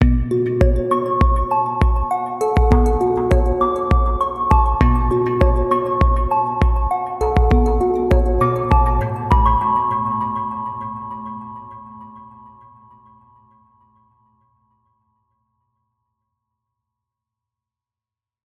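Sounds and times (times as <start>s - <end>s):
boss interlude music at 100 bpm: 0.0s - 10.2s.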